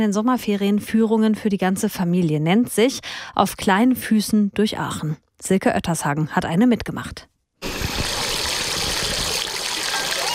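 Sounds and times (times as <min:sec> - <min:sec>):
speech: 0:00.0 - 0:07.3
water splashing from small ground-level fountains at Elisenbrunnen on a warm summer day: 0:07.6 - 0:10.3.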